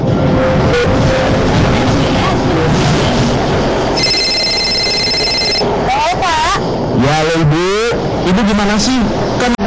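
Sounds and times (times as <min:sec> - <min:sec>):
busy noisy background: 0:00.0 - 0:09.6
short chirping tone: 0:04.0 - 0:05.6
telephone ringing: 0:04.0 - 0:05.7.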